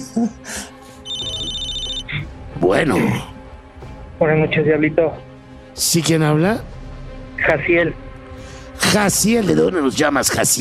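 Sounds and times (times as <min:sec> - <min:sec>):
speech: 0:00.0 - 0:00.6, 0:02.6 - 0:03.3, 0:04.2 - 0:06.8, 0:07.4 - 0:08.0, 0:08.9 - 0:10.6
steady high electronic ring tone on a radio call-in phone line: 0:01.1 - 0:02.2.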